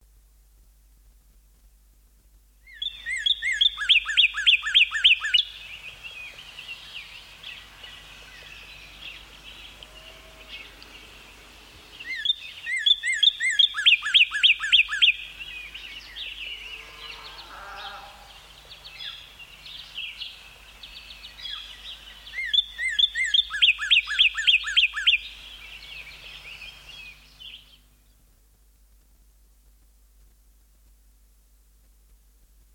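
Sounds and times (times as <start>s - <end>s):
northern cardinal: 2.6s - 11.0s, 12.0s - 17.3s, 18.8s - 28.2s
songbirds: 2.6s - 29.0s.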